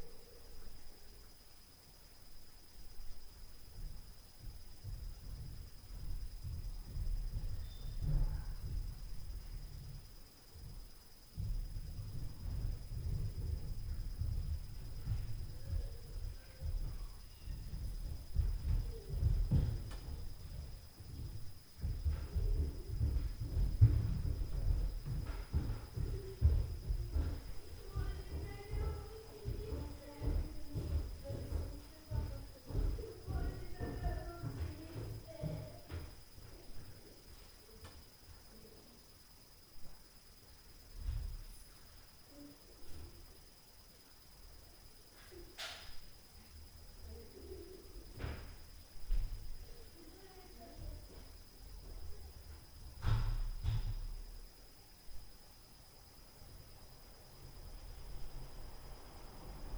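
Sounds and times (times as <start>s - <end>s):
footsteps on stairs at night: 3.0s - 38.4s, 40.6s - 41.7s, 47.0s - 54.5s
door at night: 45.6s - 46.0s.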